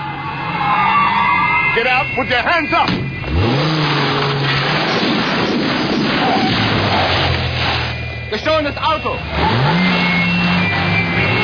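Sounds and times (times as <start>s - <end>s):
car engine revving as the vehicle accelerates: 0.0s - 11.4s
speech: 1.8s - 3.6s, 8.3s - 9.9s.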